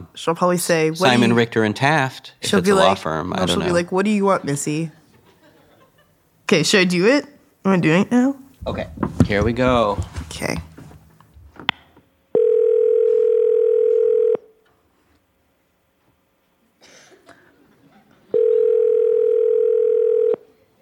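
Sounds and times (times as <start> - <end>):
speech: 0.2 - 5.0, 6.5 - 10.7
faint laugh: 5.1 - 6.2
outgoing phone call ringing tone: 12.4 - 14.5, 18.3 - 20.4.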